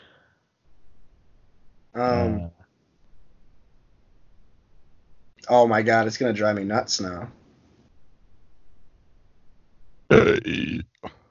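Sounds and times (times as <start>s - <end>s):
speech: 2.0s - 2.6s, 5.5s - 7.4s, 10.2s - 11.2s
loud burp with a short trailing croak: 10.1s - 11.1s.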